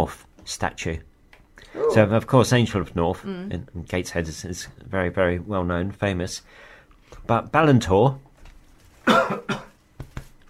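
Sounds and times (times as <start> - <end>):
speech: 0.0 - 8.3, 9.0 - 9.7
person coughing from biscuit caught in the throat: 9.0 - 9.8.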